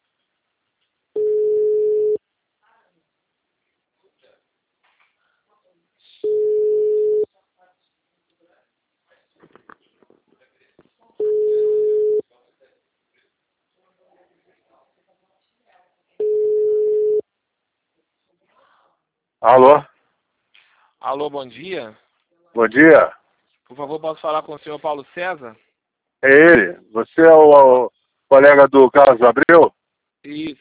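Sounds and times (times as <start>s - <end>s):
telephone ringback tone while a call is being placed: 1.2s - 2.2s, 6.2s - 7.3s, 11.2s - 12.2s, 16.2s - 17.2s
speech: 19.4s - 19.9s, 21.0s - 22.0s, 22.6s - 25.6s, 26.2s - 30.5s.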